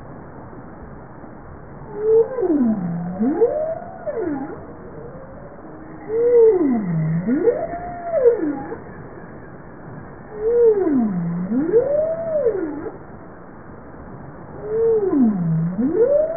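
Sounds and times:
bowhead whale giving low U-shaped moaning calls: 0:01.9 - 0:09.2, 0:10.3 - 0:13.0, 0:14.6 - 0:16.3.

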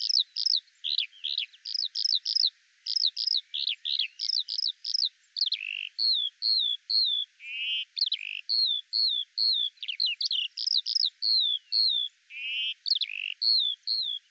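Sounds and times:
Eurasian skylark song: 0:00.0 - 0:14.2.

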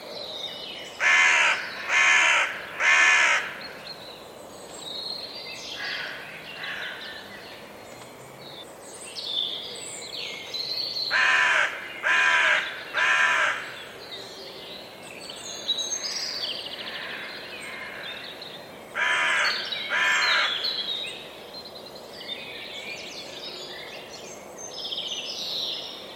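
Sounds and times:
crow-like bird giving harsh caws: 0:01.0 - 0:03.6, 0:11.1 - 0:13.8, 0:19.0 - 0:20.6.

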